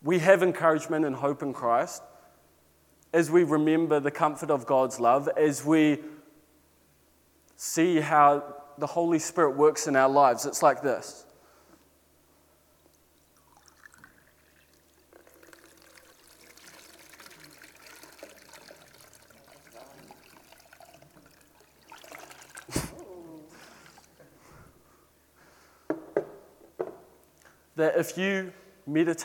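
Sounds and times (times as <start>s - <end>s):
speech: 0.0s - 2.1s, 3.1s - 6.2s, 7.6s - 11.3s, 27.8s - 29.2s
water pouring into a jug until overflowing: 13.2s - 23.0s, 23.6s - 24.3s.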